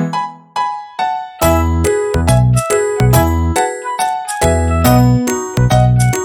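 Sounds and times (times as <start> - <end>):
wind chimes tinkling: 1.4 - 6.2.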